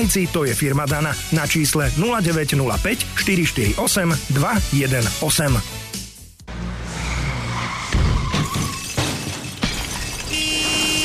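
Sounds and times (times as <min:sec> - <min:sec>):
speech: 0:00.0 - 0:05.9
car tires squealing in a skid: 0:06.5 - 0:09.0
loud car crash: 0:07.5 - 0:11.0
debris clattering: 0:07.9 - 0:11.0
glass shattering: 0:07.9 - 0:11.0.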